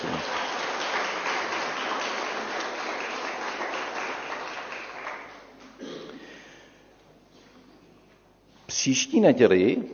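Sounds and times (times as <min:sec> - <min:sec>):
audience applauding for a church member's birthday: 0:00.0 - 0:05.6
speech: 0:08.8 - 0:09.9.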